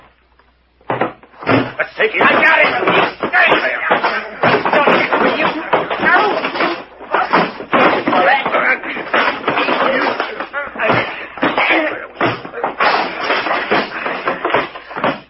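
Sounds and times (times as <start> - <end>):
fistfight blows and thuds: 0.8 - 15.2
voices in a commotion: 1.8 - 13.6
speech: 2.0 - 2.6.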